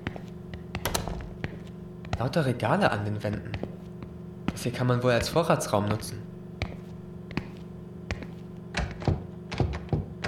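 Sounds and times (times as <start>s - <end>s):
locked cellar door being tried, dull thunks and knocks: 0.8s - 1.4s, 8.7s - 10.2s
speech: 2.2s - 3.8s, 4.6s - 6.2s.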